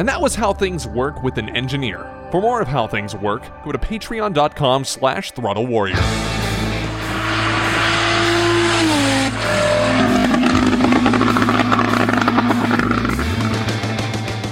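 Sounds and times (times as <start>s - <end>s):
speech: 0.0s - 6.4s
older Porsche 911 Turbo engine revving: 6.0s - 14.5s
rising whine: 6.0s - 14.5s.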